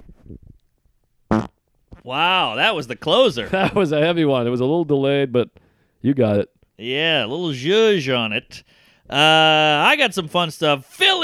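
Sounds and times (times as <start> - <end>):
loud buzzy fart sound effect: 1.3 - 1.6
speech: 2.1 - 11.2.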